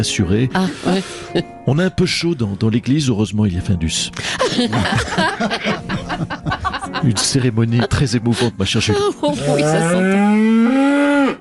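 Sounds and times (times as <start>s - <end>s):
speech: 0.0s - 11.3s
laughter: 4.2s - 10.0s
cow mooing: 9.4s - 11.3s.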